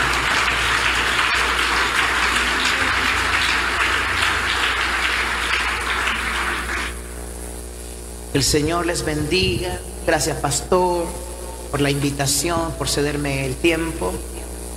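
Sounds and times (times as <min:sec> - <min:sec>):
crowd applauding: 0:00.0 - 0:07.2
speech: 0:08.4 - 0:14.5.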